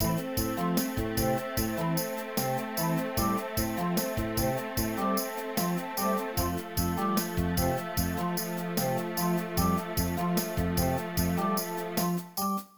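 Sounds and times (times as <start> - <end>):
stem organ: 0.0 - 12.6.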